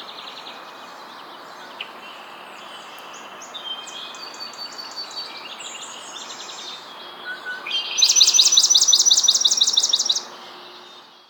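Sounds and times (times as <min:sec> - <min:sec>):
swamp sparrow Melospiza georgiana trilled song: 0:03.2 - 0:11.2.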